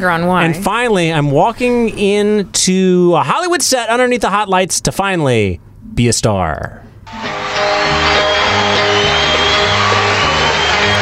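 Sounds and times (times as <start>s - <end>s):
speech: 0.0s - 7.4s
group of people screaming and cheering: 7.1s - 10.9s.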